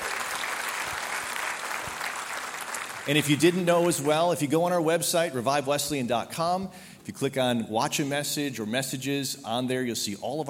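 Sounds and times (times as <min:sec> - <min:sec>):
audience applause at a worship gathering: 0:00.0 - 0:04.2
speech: 0:03.1 - 0:10.4.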